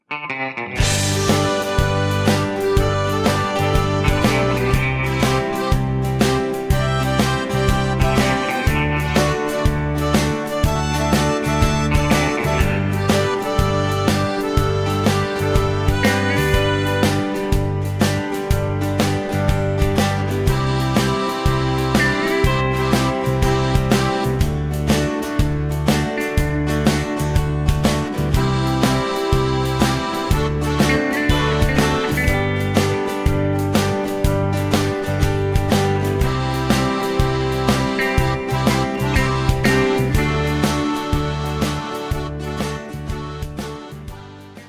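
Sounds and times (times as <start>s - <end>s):
backing track music without backing vocals: 0.0s - 44.6s.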